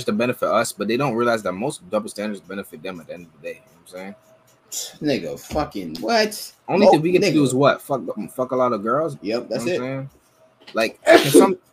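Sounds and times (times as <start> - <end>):
speech: 0.0 - 11.7
person sneezing: 11.0 - 11.6.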